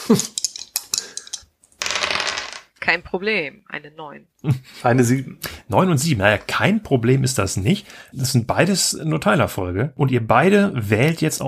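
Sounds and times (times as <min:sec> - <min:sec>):
speech: 0:00.1 - 0:00.4, 0:02.9 - 0:11.4
dice rolled on a surface during a tabletop role-playing game: 0:00.1 - 0:02.7.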